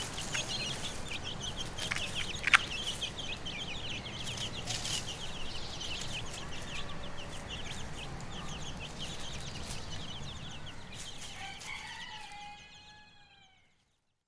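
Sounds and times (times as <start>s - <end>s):
chicks peeping on Brownsea Island: 0.0s - 14.1s.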